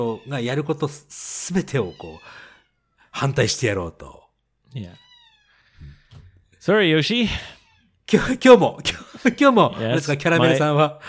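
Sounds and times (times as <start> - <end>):
speech: 0.0 - 2.5, 3.1 - 5.1, 5.8 - 11.0
cat meowing: 0.0 - 3.4, 4.7 - 6.2, 7.4 - 8.0
laughter: 8.2 - 10.7.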